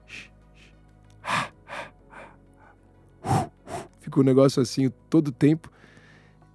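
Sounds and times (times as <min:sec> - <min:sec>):
voice imitating eerie horror-film breathing: 0:00.0 - 0:04.0
speech: 0:04.2 - 0:05.8.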